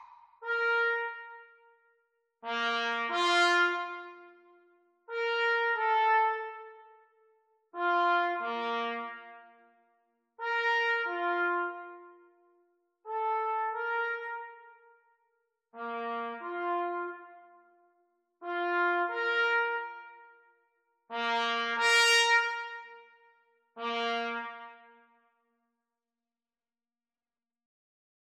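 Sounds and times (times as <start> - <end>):
trumpet and cornet duet at exam speed: 0.4 - 1.7, 2.5 - 6.9, 7.7 - 9.5, 10.4 - 12.3, 13.1 - 14.9, 15.8 - 17.7, 18.4 - 20.5, 21.1 - 25.1.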